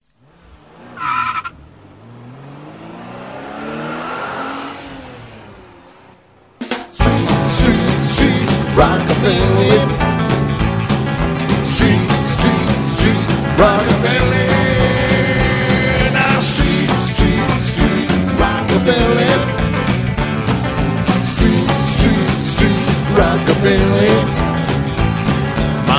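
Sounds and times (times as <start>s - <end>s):
rockabilly music in the street: 6.5s - 25.9s.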